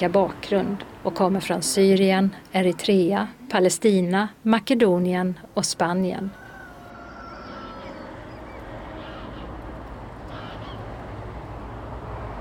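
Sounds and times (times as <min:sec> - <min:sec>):
speech: 0:00.0 - 0:06.4
large flock of gulls and migrating birds calling with caws and honking cries: 0:06.5 - 0:10.9.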